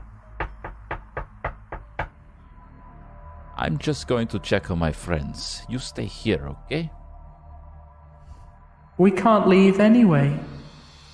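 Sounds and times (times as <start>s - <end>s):
knocks against wood from an attic: 0.4s - 2.1s
speech: 3.6s - 7.0s, 9.0s - 10.6s.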